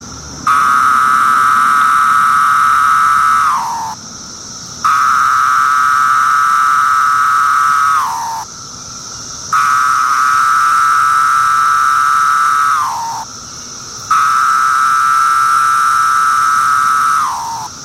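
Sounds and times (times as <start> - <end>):
M septendecim cicadas Court I call: 0.0 - 17.8.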